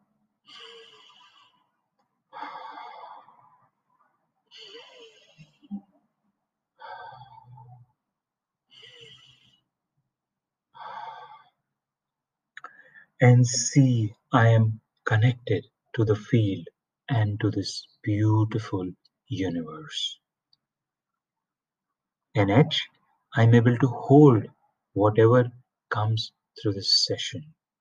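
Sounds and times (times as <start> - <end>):
slow deep breathing: 0.4 - 3.8, 4.5 - 5.7, 6.8 - 8.0, 8.7 - 9.8, 10.8 - 11.7, 12.6 - 13.2
speech: 13.2 - 20.2, 22.4 - 27.6.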